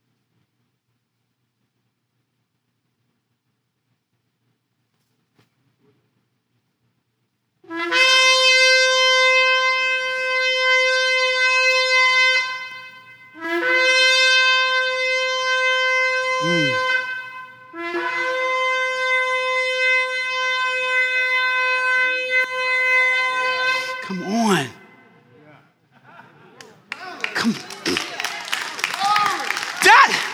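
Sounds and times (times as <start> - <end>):
shofar sounding the tekiah: 7.6 - 25.2, 26.9 - 30.3
laughter: 25.9 - 30.3.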